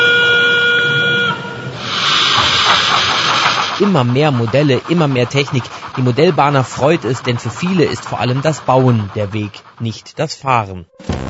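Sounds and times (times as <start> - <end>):
model railway train horn from onboard digital sound module: 0.0 - 1.8
hissing steam from model railway train sound module: 0.1 - 10.7
speech: 3.8 - 11.2.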